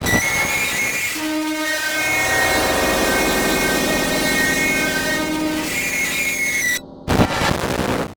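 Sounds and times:
distorted reverse feedback whine: 0.0s - 8.1s.

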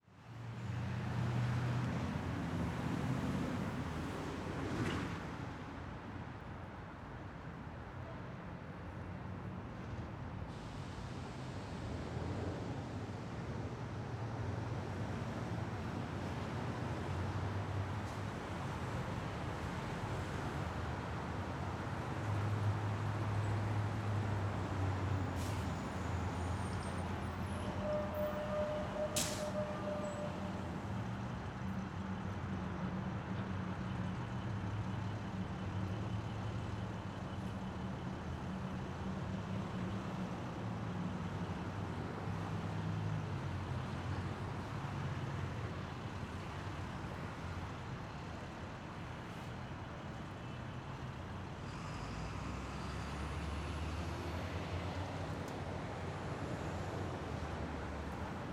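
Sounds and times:
traffic ambience: 0.1s - 58.5s.

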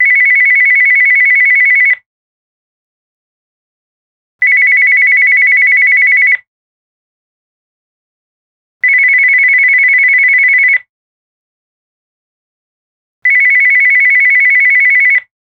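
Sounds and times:
electronic phone ringing: 0.0s - 2.0s, 4.4s - 6.4s, 8.8s - 10.9s, 13.2s - 15.3s.

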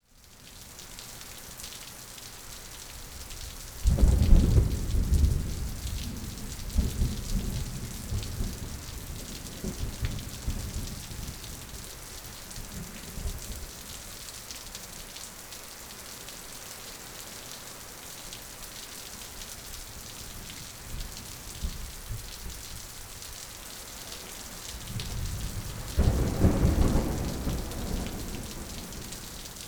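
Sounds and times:
thunderstorm: 3.8s - 11.9s, 24.6s - 29.6s.

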